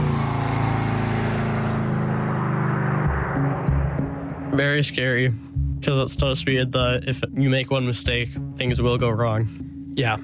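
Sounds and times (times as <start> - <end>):
car engine roaring at high speed through an intersection: 0.0 - 5.7
speech: 4.6 - 10.2.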